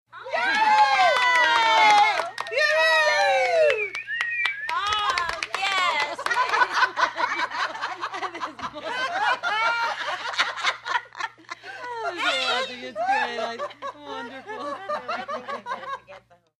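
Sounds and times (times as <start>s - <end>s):
10 women applauding: 0.3s - 7.2s
laughter: 4.8s - 16.5s.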